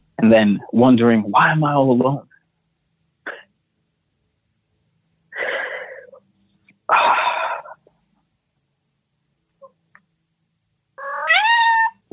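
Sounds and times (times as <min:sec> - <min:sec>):
speech: 0:00.2 - 0:02.3
cat meowing: 0:11.0 - 0:12.0.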